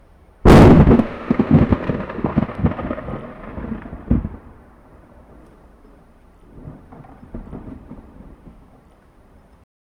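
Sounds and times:
sudden loud crack of thunder: 0.5s - 5.4s, 6.5s - 8.7s.

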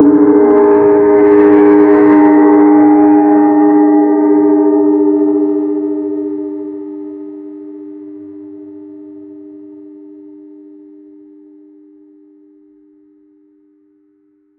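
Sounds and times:
Chinese gong at a ceremony: 0.0s - 13.8s.

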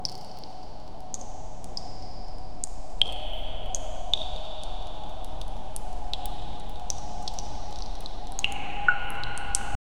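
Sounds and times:
distant water dripping with reflections: 0.0s - 9.8s.

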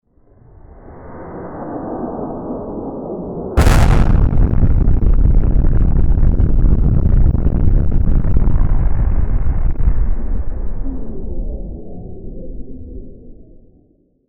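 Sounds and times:
explosion: 3.6s - 11.8s.

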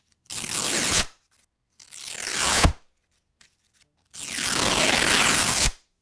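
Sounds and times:
paper torn abruptly: 0.3s - 1.2s, 1.8s - 2.8s, 4.1s - 5.8s.

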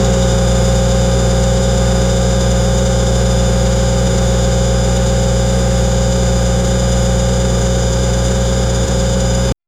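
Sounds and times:
stopped electric car idling: 0.0s - 9.6s.

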